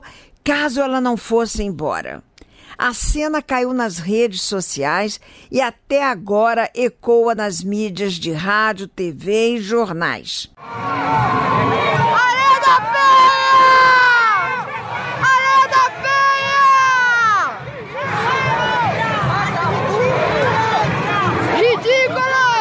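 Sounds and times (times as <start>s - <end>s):
speech: 0.5s - 11.4s
large audience chanting in unison at the sambadrome: 10.6s - 22.5s.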